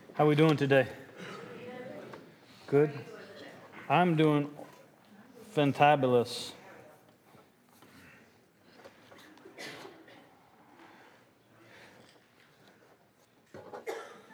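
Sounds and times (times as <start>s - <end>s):
low steady murmur of church audience: 0.0s - 12.2s
speech: 0.2s - 1.0s, 2.7s - 3.2s, 3.9s - 4.6s, 5.6s - 6.6s
woman coughing in a church service audience: 1.2s - 1.6s, 9.6s - 10.3s, 13.8s - 14.3s.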